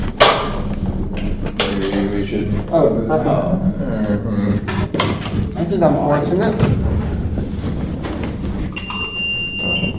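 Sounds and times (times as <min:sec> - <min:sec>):
low rumble of room noise: 0:00.0 - 0:09.9
speech: 0:02.3 - 0:04.7, 0:05.6 - 0:07.1
quiz buzzer being tested: 0:08.7 - 0:09.9.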